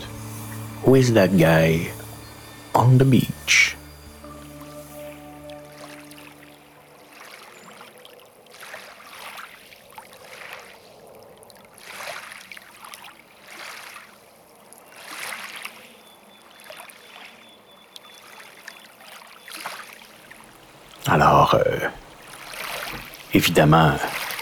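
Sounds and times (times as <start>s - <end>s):
low engine-like hum: 0.0s - 7.6s
steady outdoor hush: 0.0s - 8.1s, 20.2s - 24.4s
water lapping and splashing gently at a riverbank: 0.0s - 24.4s
speech: 0.8s - 2.0s, 2.8s - 3.8s, 23.4s - 24.2s.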